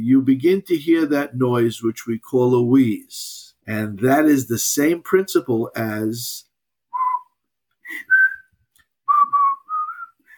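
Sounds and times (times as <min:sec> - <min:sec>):
speech: 0:00.0 - 0:06.5
person whistling a simple melody through narrowed lips: 0:06.9 - 0:10.3.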